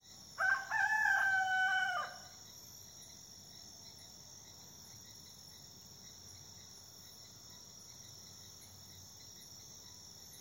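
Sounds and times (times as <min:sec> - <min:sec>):
rooster crowing at Amazon dawn in Tamshiyacu Iquitos: 0:00.4 - 0:02.3.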